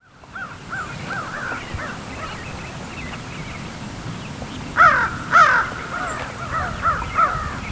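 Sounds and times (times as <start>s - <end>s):
American crow cawing: 0.4s - 2.0s, 4.8s - 7.6s.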